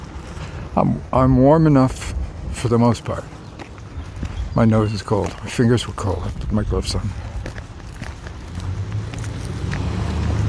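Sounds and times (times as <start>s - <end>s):
car engine rumble approaching along the road: 0.0s - 10.4s
car tire noise on the road: 0.0s - 10.4s
light wind noise outdoors: 0.0s - 10.4s
speech: 0.8s - 3.4s, 4.6s - 7.3s
footsteps outdoors: 3.2s - 10.4s.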